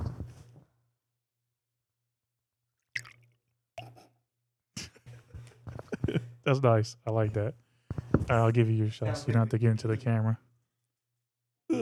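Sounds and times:
Casamigos Añejo tequila pouring into a shot glass: 2.9s - 4.0s
speech: 6.4s - 7.6s, 8.3s - 10.4s.

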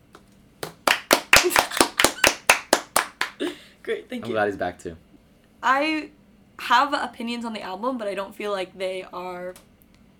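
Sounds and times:
one person clapping hands: 0.1s - 3.4s
speech: 3.9s - 9.7s.

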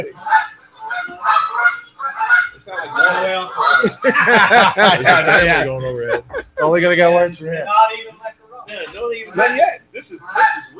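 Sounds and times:
speech: 0.0s - 0.4s, 3.1s - 8.1s, 8.7s - 10.6s
goose honking and screaming: 0.2s - 4.1s, 9.2s - 10.7s
laughter: 2.8s - 7.2s.

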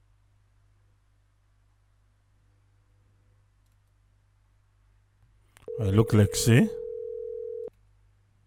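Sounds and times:
telephone ringing tone on an unanswered call: 5.7s - 7.7s
speech: 5.8s - 6.8s.

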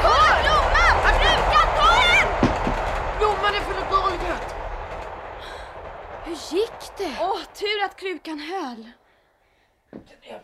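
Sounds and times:
heavy continuous low rumble of a house from a passing express train: 0.0s - 9.1s
sharp knocks and thuds: 2.3s - 3.1s.

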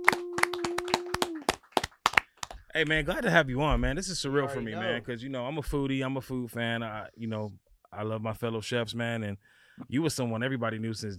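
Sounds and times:
hands clapping: 0.0s - 3.0s
speech: 2.8s - 11.1s.

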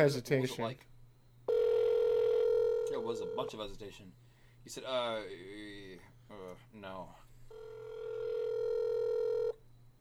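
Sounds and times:
speech: 0.0s - 0.9s, 3.0s - 7.7s
outgoing phone call ring tone buzzing: 1.5s - 3.6s, 7.5s - 9.6s.

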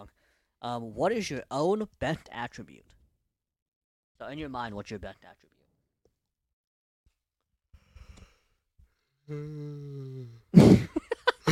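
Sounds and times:
speech: 0.6s - 3.0s, 4.2s - 5.6s, 9.3s - 11.0s
person yawning: 9.3s - 10.4s.

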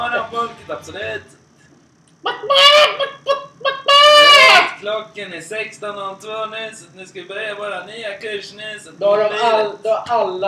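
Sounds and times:
speech: 0.3s - 1.4s, 2.2s - 3.4s, 4.8s - 10.4s
chicken clucking loudly: 2.2s - 4.7s.

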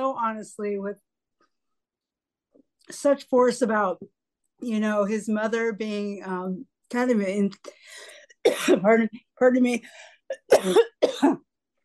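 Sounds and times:
speech: 0.2s - 1.1s, 2.9s - 11.4s
harsh coughing: 8.4s - 8.8s, 10.3s - 11.5s.

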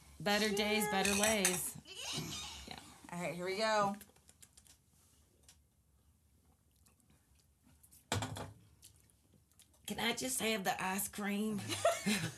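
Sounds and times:
speech: 0.2s - 1.8s, 3.2s - 4.1s, 9.9s - 12.3s
glasses clinking together in a toast: 0.4s - 1.8s
laughter: 11.6s - 12.3s.

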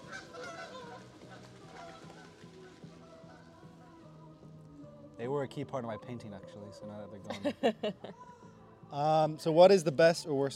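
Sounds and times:
flock of geese honking overhead: 0.0s - 4.4s
speech: 5.2s - 10.5s
laughter: 7.3s - 8.3s.

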